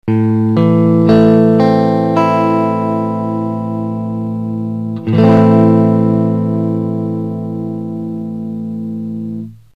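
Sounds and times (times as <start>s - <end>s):
guitar playing in A minor: 0.0s - 9.7s.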